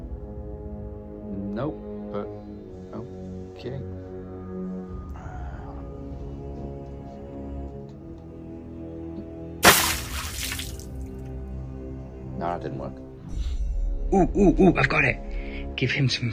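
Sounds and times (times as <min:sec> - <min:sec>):
speech: 0:01.6 - 0:02.4, 0:03.6 - 0:03.9, 0:12.4 - 0:13.0, 0:14.1 - 0:16.3
water thrown over someone splashing: 0:09.6 - 0:11.0.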